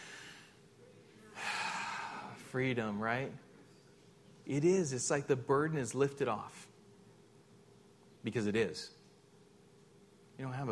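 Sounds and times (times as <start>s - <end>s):
deep breath: 0.0s - 0.6s, 1.3s - 2.5s
speech: 2.5s - 3.5s, 4.5s - 6.7s, 8.2s - 9.0s, 10.4s - 10.7s.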